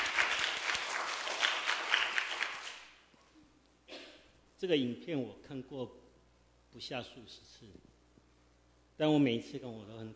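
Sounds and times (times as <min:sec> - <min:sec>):
audience applauding: 0:00.0 - 0:02.9
speech: 0:04.6 - 0:06.1, 0:06.8 - 0:07.9, 0:09.0 - 0:10.1.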